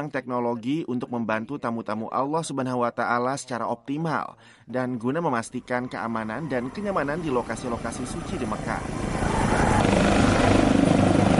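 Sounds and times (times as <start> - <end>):
speech: 0.0 - 9.0
dozens of military helicopter rotors thrumming in a parade in Saudi Arabia: 5.5 - 11.3.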